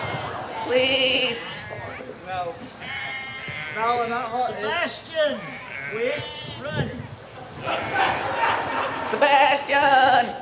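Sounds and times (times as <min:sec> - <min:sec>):
sheep bleating: 0:00.0 - 0:02.1, 0:02.7 - 0:06.7
murmur of voices of excited children: 0:00.0 - 0:10.4
outdoor commotion: 0:00.0 - 0:10.4
speech: 0:00.7 - 0:01.6, 0:02.3 - 0:03.0, 0:03.7 - 0:06.9, 0:07.6 - 0:08.4, 0:09.1 - 0:10.4
laughter: 0:07.4 - 0:09.4.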